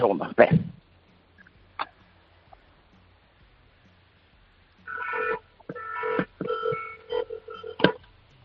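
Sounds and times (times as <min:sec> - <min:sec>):
car horn honking heard through a mobile phone on the street: 0:04.9 - 0:08.0.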